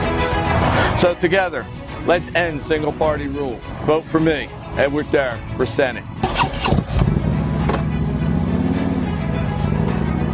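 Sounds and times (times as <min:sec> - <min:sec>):
speech: 0:01.0 - 0:06.8
motorcycle engine rumbling as it rides off: 0:05.4 - 0:10.3.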